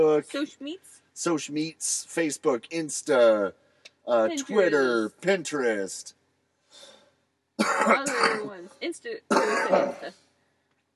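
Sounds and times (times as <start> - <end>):
speech: 0.0 - 6.9, 7.6 - 10.2
person clearing throat: 7.6 - 8.5, 9.3 - 10.1
person coughing: 7.6 - 8.6, 9.3 - 10.1.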